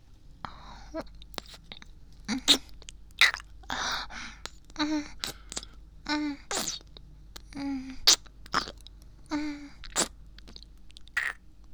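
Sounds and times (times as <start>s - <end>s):
wet sucking sounds of oral sex: 1.3s - 1.7s, 2.3s - 5.8s, 6.5s - 8.8s, 9.8s - 11.4s.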